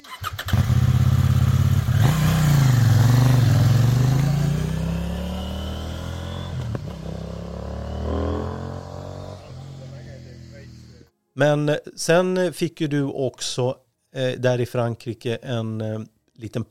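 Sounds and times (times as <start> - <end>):
motorcycle engine revving and accelerating on mountain roads: 0.1 - 11.1
speech: 11.4 - 16.6.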